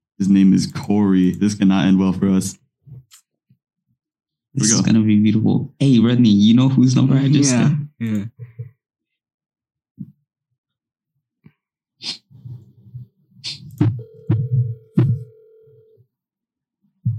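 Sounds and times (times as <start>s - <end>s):
speech: 0.2s - 2.6s, 4.6s - 8.7s, 12.0s - 12.2s
low thumps: 13.8s - 15.3s
phone line ringback tone: 13.9s - 16.0s.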